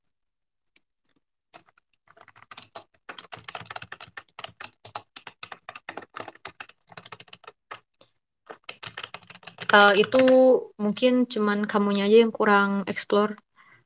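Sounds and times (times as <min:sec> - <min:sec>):
typing on a computer keyboard: 0:01.5 - 0:10.4
speech: 0:09.7 - 0:13.4.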